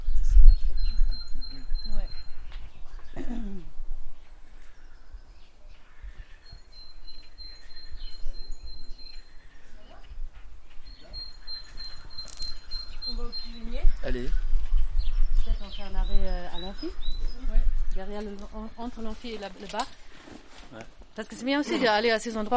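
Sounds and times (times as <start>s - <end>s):
great tit singing: 0.4s - 3.3s, 4.6s - 10.1s, 10.8s - 19.1s
speech: 18.1s - 20.0s, 20.7s - 22.5s.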